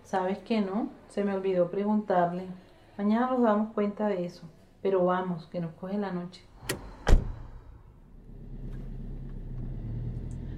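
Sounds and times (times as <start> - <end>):
speech: 0.1 - 6.9
car doors thudding shut as people get into the car: 6.6 - 7.6
car engine rumbling low as the car drives off: 6.6 - 10.5.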